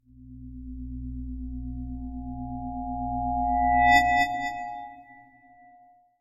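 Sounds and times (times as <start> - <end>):
slow intrusive feedback tone: 1.6 - 5.8.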